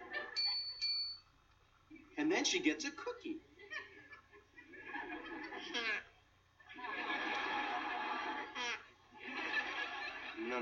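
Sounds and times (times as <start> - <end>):
laughter: 0.0 - 0.6, 3.5 - 10.6
bright dings from a small bell: 0.4 - 1.3
speech: 2.2 - 3.5.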